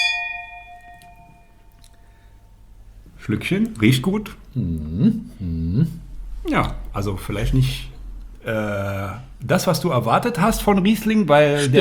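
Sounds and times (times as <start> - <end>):
wine glasses of Riesling clinking in a toast: 0.0 - 1.8
speech: 3.2 - 11.7.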